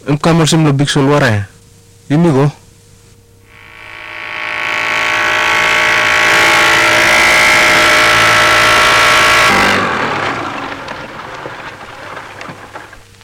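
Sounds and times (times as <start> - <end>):
speech: 0.0 - 2.6
motorboat engine droning and revving: 3.5 - 13.0.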